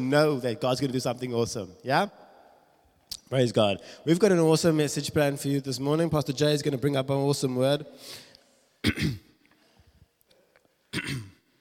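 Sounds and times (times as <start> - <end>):
speech: 0.0 - 2.2, 3.3 - 9.2, 10.9 - 11.3
throat clearing during a church service: 8.8 - 9.3, 10.9 - 11.5.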